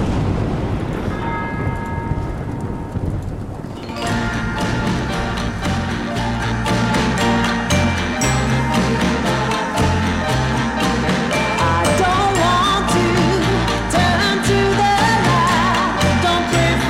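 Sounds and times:
thunder rumbling: 0.0s - 16.0s
rain: 0.0s - 16.8s
church bell tolling: 1.0s - 3.2s, 3.8s - 14.4s
loud full band playing: 3.9s - 16.8s.

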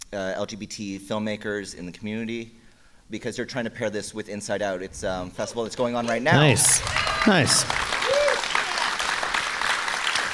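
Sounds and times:
speech: 0.1s - 7.8s
audience applauding: 6.1s - 10.3s.

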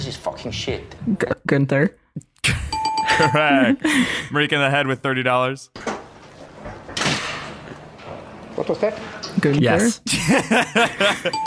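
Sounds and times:
speech: 0.1s - 2.6s, 3.2s - 5.9s, 8.7s - 11.4s
laughter: 3.0s - 4.3s, 10.1s - 11.4s
door slamming shut hard: 5.8s - 7.7s.

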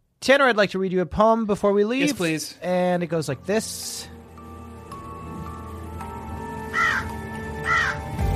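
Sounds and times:
speech: 0.2s - 4.2s
crow cawing: 6.6s - 8.2s.

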